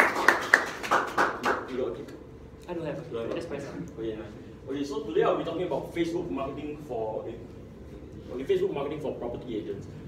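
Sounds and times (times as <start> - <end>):
small crowd at a talk applauding a speaker: 0.0 - 1.6
speech: 1.7 - 7.6, 8.2 - 10.0.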